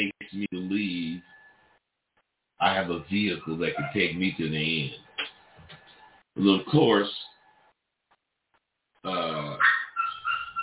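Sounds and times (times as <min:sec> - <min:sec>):
speech: 0:02.6 - 0:05.0, 0:06.4 - 0:07.2
excited dog barking and grunting: 0:03.4 - 0:04.4, 0:09.2 - 0:10.6.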